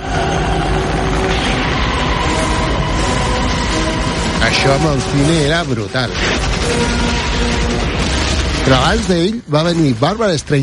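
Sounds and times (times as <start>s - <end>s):
helicopter rotor blades chopping in a film scene: 0.0s - 10.6s
speech: 4.4s - 7.6s, 8.7s - 10.6s.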